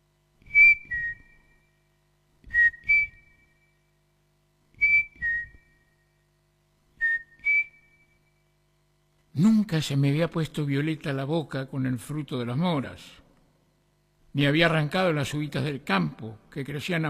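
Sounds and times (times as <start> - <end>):
striped cuckoo two-note whistling call: 0.4 - 1.8, 2.5 - 3.7, 4.8 - 6.0, 7.0 - 8.2
speech: 9.4 - 13.2, 14.4 - 17.0.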